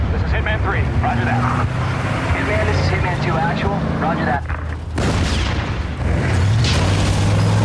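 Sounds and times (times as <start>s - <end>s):
speech: 0.5s - 5.1s
loud explosion with deep sustained rumble: 5.0s - 7.3s.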